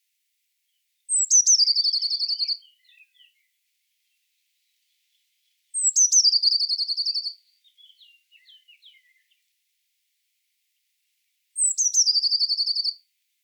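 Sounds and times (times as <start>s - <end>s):
Eurasian blue tit Cyanistes caeruleus giving churring scold and trills: 1.1s - 3.3s, 5.8s - 9.3s, 11.6s - 13.0s.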